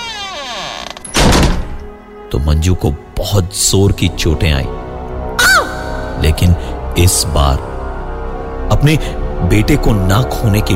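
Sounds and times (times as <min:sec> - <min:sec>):
room door slamming shut with a heavy thud: 0:00.0 - 0:01.9
speech: 0:02.3 - 0:04.8, 0:06.2 - 0:07.7, 0:08.7 - 0:10.7.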